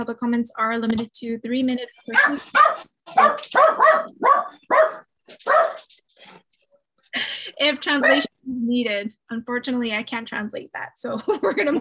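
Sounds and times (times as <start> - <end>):
speech: 0.0 - 6.4, 7.1 - 11.8
dogs barking: 2.1 - 5.9.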